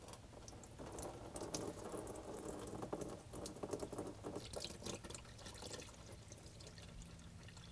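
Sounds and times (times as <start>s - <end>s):
transmission fluid draining from a transmission pan: 0.0s - 7.6s.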